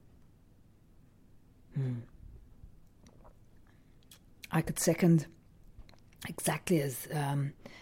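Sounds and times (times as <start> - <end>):
person sipping espresso with a wet slurp: 1.8 - 4.2
speech: 4.6 - 5.4, 6.3 - 7.8.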